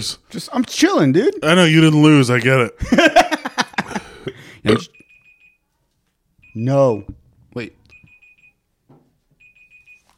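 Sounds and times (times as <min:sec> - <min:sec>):
speech: 0:00.0 - 0:03.3, 0:04.6 - 0:05.0, 0:06.6 - 0:07.8
Google digital timer alarm beeping in short high-pitched bursts: 0:04.9 - 0:05.6, 0:06.4 - 0:07.2, 0:07.9 - 0:08.6, 0:09.4 - 0:10.1.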